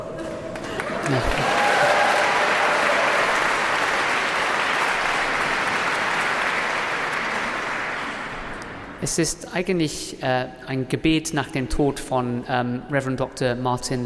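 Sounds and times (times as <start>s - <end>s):
concert audience applauding for an encore: 0.4s - 8.9s
speech: 1.1s - 1.5s, 9.0s - 14.0s.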